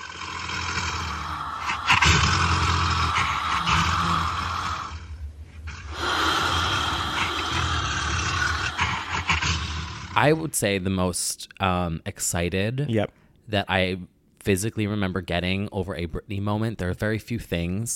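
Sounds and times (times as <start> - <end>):
tiger growling: 0.0 - 10.3
speech: 10.2 - 17.9.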